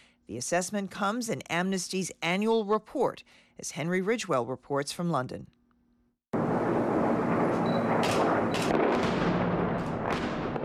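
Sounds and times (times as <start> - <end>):
speech: 0.3 - 5.6
airstrike blasts and heavy rumbling on a rebel-held city: 6.4 - 10.6.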